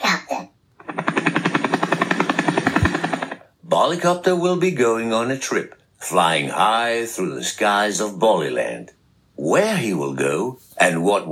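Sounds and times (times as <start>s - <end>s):
cartoonish helicopter propeller whirring: 0.8s - 3.6s
speech: 3.8s - 11.2s.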